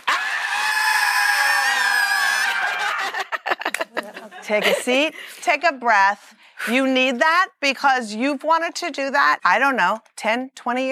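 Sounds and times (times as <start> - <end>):
scattered shouts: 0.0 - 3.0
large crowd screaming at full volume: 0.0 - 3.2
crowd laughing: 2.5 - 5.1
speech: 4.5 - 10.9.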